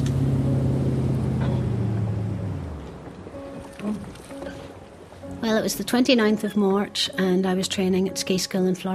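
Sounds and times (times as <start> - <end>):
motorboat coming in, throttling back: 0.0 - 7.0
faint water: 0.0 - 8.9
speech: 5.4 - 8.9.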